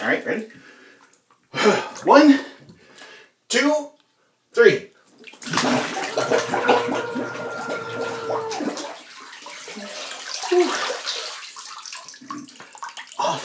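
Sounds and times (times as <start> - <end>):
speech: 0.0 - 0.8, 1.6 - 2.4
water sloshing and bubbling: 5.2 - 13.4
muffled sustained scream from a person with their head underwater: 6.1 - 8.9.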